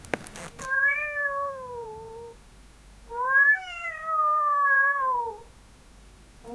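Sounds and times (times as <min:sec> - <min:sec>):
cat crying with long drawn-out meows: 0:00.6 - 0:02.4, 0:03.1 - 0:05.5.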